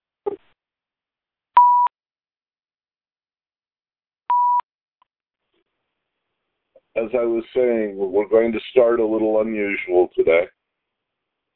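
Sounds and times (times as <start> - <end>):
electronic phone keypad beeps from pressing star six to mute: 4.3 - 4.6
speech: 7.0 - 10.6.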